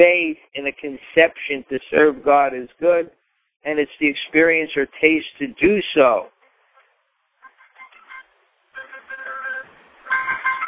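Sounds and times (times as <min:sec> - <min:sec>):
speech: 0:00.0 - 0:06.4
mobile phone ringtone playing a bright electronic melody during a class: 0:07.4 - 0:10.6.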